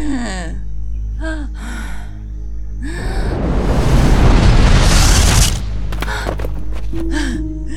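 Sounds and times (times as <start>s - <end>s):
rubble pile blasting apart with a loud roar: 3.0s - 5.9s
rumble of shifting rubble: 3.0s - 7.2s.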